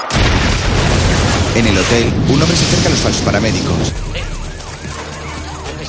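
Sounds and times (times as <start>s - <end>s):
bomb exploding under a stage: 0.1s - 4.3s
debris-like noise and low booming: 0.1s - 4.8s
speech: 1.6s - 4.3s.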